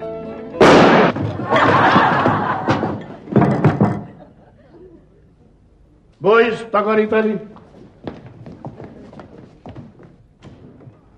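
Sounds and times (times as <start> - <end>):
loud gunshots: 0.6 - 1.2
laughter: 1.2 - 5.6
speech: 6.2 - 7.5.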